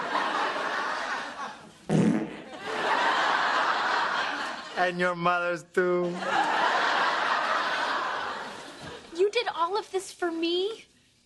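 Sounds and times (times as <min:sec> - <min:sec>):
laughter: 0:00.0 - 0:05.0, 0:06.0 - 0:09.2
steady hiss of noise: 0:00.0 - 0:11.2
chair making a short loud farting noise: 0:01.8 - 0:02.5
speech: 0:04.8 - 0:06.5, 0:09.4 - 0:10.9.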